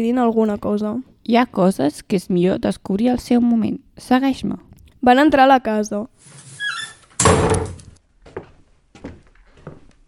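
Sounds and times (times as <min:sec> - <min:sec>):
speech: 0:00.0 - 0:06.4
heavy door scrape and thud: 0:06.2 - 0:08.0
old door creaking open: 0:06.4 - 0:08.0
door knocks and rattles as it settles: 0:07.2 - 0:08.0.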